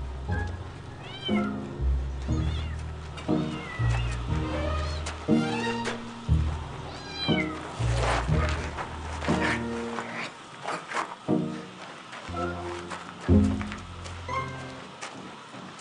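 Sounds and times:
low rumbling hum: 0.0 - 10.3, 12.3 - 15.0
cat meowing in drawn-out wavering cries: 1.0 - 1.6, 2.3 - 2.8, 3.4 - 6.0, 6.9 - 7.6.

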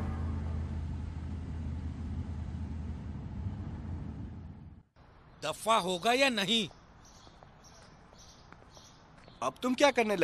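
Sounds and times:
car engine running while driving: 0.0 - 4.9
speech: 5.4 - 6.8, 9.4 - 10.2.

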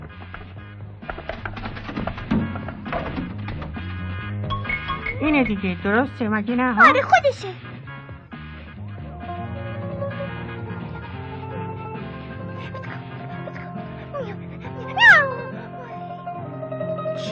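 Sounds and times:
busy music: 0.0 - 17.3
speech: 5.2 - 7.7
cat meowing: 6.8 - 7.2, 14.2 - 16.0.

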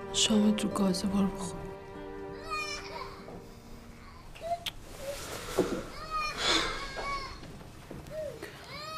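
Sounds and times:
speech: 0.1 - 1.6
child crying: 2.3 - 3.4, 3.9 - 5.2, 5.9 - 7.5, 8.1 - 8.9.

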